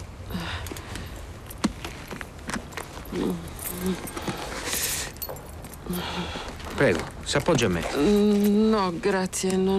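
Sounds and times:
soft rustling: 0.6s - 9.7s
bunch of car keys jangling as they are handed over: 2.7s - 6.1s
speech: 3.1s - 4.2s, 5.9s - 9.7s.

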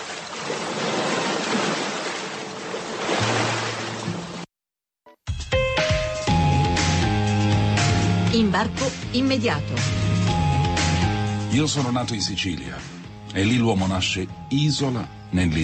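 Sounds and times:
big ocean waves crashing and roaring: 0.0s - 4.5s
tonal music: 5.3s - 15.6s
speech: 8.5s - 10.0s, 11.5s - 15.6s.

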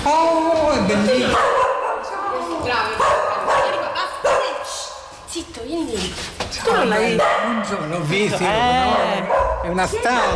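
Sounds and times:
noisy background: 0.0s - 10.3s
speech: 0.1s - 1.4s, 6.6s - 10.3s
dog barking in short sharp bursts: 1.3s - 2.3s, 2.9s - 4.9s, 6.7s - 7.8s, 8.9s - 9.7s.

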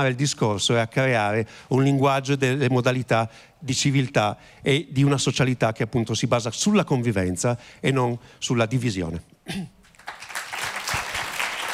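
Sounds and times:
speech: 0.0s - 9.8s
applause at a talk: 9.8s - 11.7s.

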